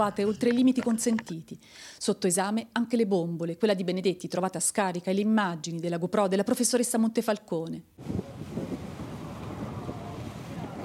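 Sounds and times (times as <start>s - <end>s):
speech: 0.0s - 8.3s
gusty wind buffeting the microphone: 8.0s - 10.8s
low rumble of waves slapping: 8.0s - 10.8s
rough choppy sea with strong currents in the Vavu atoll: 8.0s - 10.8s.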